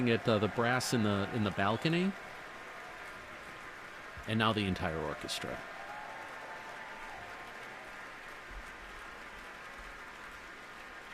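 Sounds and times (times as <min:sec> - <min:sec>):
speech: 0:00.0 - 0:02.3, 0:04.2 - 0:05.7
large audience applauding in a reverberant concert hall: 0:00.0 - 0:11.1.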